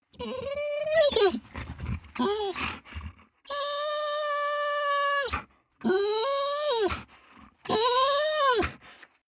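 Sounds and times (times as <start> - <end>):
dog whining long: 0.1 - 1.5, 2.2 - 2.7, 3.5 - 7.0, 7.7 - 8.8.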